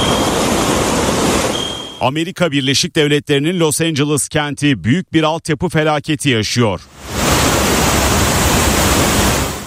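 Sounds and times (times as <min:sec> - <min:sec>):
water gushing from a burst 1916 water main into city streets in Los Angeles: 0:00.0 - 0:01.8, 0:06.9 - 0:09.6
speech: 0:02.0 - 0:07.2.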